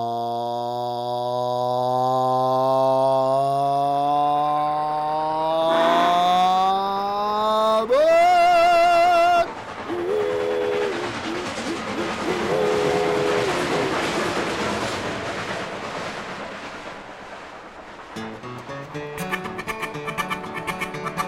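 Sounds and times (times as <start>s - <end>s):
steam train engine chugging up a hill: 0.2s - 21.2s
steam train whistle: 5.7s - 6.9s, 7.9s - 11.2s, 12.2s - 14.0s
music with plucked, rhythmic notes: 18.2s - 21.2s.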